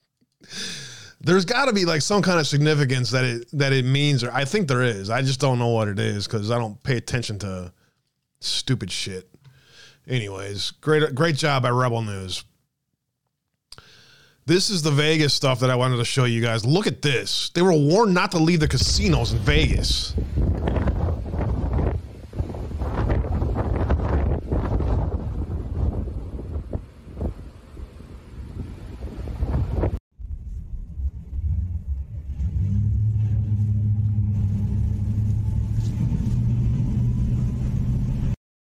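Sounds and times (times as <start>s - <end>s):
speech: 1.2s - 7.8s, 8.4s - 9.3s, 10.1s - 12.5s, 14.4s - 20.9s
storm wind gusting and buffeting the microphone: 18.6s - 32.6s
deep engine-like rumble with low droning hum: 18.7s - 21.8s, 30.2s - 38.4s.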